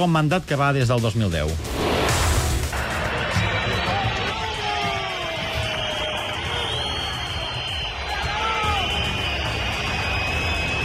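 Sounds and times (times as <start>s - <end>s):
speech: 0.0s - 1.9s
huge stadium crowd roaring: 2.7s - 10.8s
shrill whistles from stadium crowd: 3.4s - 10.8s.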